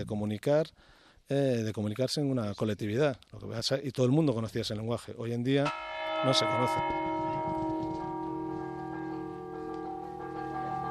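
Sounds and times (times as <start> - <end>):
speech: 0.0 - 7.1
church bells ringing: 5.6 - 10.8.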